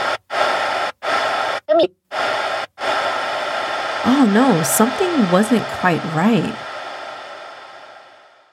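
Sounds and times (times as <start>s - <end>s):
hissing static crackling from a drive-thru speaker: 0.0s - 8.5s
speech: 1.8s - 2.0s, 4.0s - 6.6s
garbled voice squawking through a drive-thru speaker: 4.1s - 6.6s.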